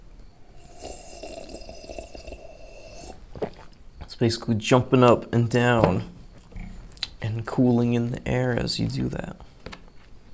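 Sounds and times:
person slurping hot coffee: 0:00.4 - 0:03.8
gulp: 0:00.5 - 0:03.8
speech: 0:04.2 - 0:06.1, 0:07.6 - 0:09.5.

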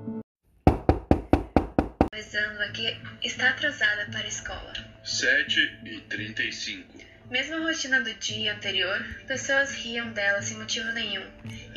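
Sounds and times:
knocking on a bathroom door: 0:00.7 - 0:02.1
speech: 0:02.2 - 0:11.7.

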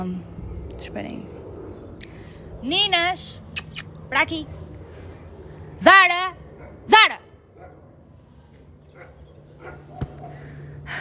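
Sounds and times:
speech: 0:00.0 - 0:01.4, 0:02.6 - 0:03.4, 0:04.1 - 0:04.6, 0:05.8 - 0:07.1
dog barking: 0:06.6 - 0:06.8, 0:07.6 - 0:07.9, 0:08.9 - 0:10.4.

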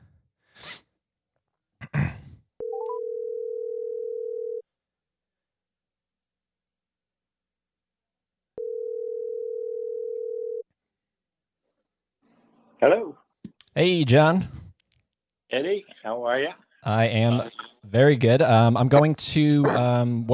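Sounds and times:
telephone ringback tones on an outgoing call: 0:02.6 - 0:04.6, 0:08.6 - 0:10.6
speech: 0:12.8 - 0:13.2, 0:13.8 - 0:14.6, 0:15.5 - 0:20.3.

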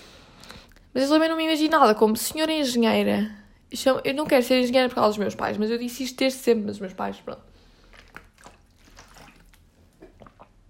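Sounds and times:
speech: 0:01.0 - 0:07.5
person sipping and swallowing water: 0:07.6 - 0:10.6.

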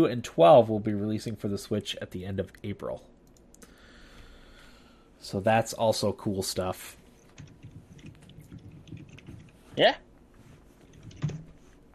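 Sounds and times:
speech: 0:00.0 - 0:03.2, 0:05.2 - 0:07.0, 0:09.8 - 0:10.1
typing on a computer keyboard: 0:07.3 - 0:09.6, 0:10.8 - 0:11.5.

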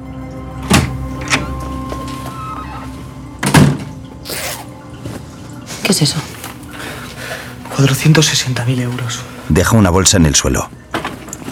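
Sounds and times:
bathroom door shutting: 0:00.6 - 0:04.0
speech: 0:06.0 - 0:06.4, 0:07.8 - 0:10.8.

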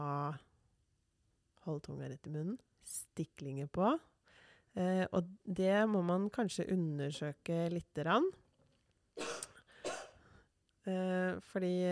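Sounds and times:
speech: 0:00.0 - 0:00.5, 0:01.6 - 0:08.4, 0:10.8 - 0:11.9
person coughing: 0:09.2 - 0:10.2.

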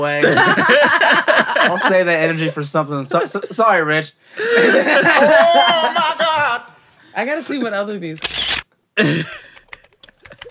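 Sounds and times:
speech: 0:00.0 - 0:06.2, 0:07.2 - 0:08.4, 0:09.0 - 0:09.4
laughter: 0:00.0 - 0:08.0, 0:09.0 - 0:10.5
throat clearing: 0:09.0 - 0:09.8
light clicks: 0:09.4 - 0:10.5.

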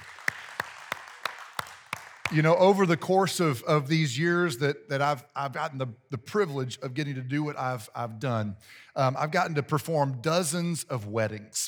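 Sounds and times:
people clapping in rhythm: 0:00.0 - 0:03.1
speech: 0:02.3 - 0:11.6.

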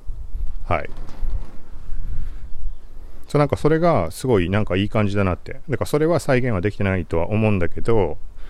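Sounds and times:
footsteps on an outdoor surface: 0:00.0 - 0:06.2
speech: 0:00.7 - 0:01.2, 0:03.3 - 0:08.3.

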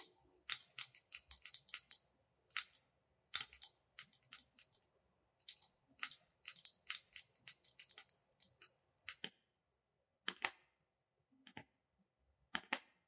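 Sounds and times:
fingertips tapping on assorted objects: 0:00.0 - 0:04.8, 0:05.5 - 0:09.3.

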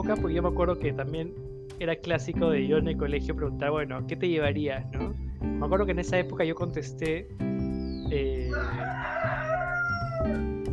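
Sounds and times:
speech: 0:00.0 - 0:07.5, 0:08.1 - 0:09.1
rooster crowing: 0:08.5 - 0:10.5.

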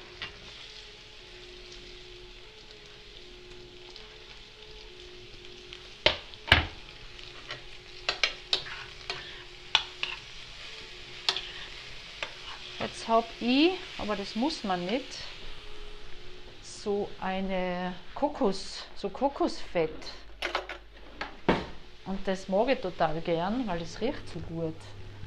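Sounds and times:
zucchini sizzling in a hot pan: 0:00.0 - 0:19.6, 0:21.6 - 0:25.2
utensil stirring zucchini with sharp scraping knocks: 0:07.3 - 0:10.3, 0:11.3 - 0:12.9
speech: 0:13.1 - 0:15.3, 0:16.8 - 0:20.2, 0:22.1 - 0:25.2.

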